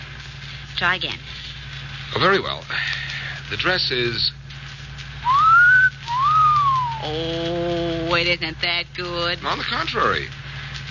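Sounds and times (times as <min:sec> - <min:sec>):
speech: 0:00.8 - 0:01.5, 0:02.1 - 0:04.4, 0:07.0 - 0:10.8
man giving an admiring wolf whistle: 0:05.2 - 0:07.2.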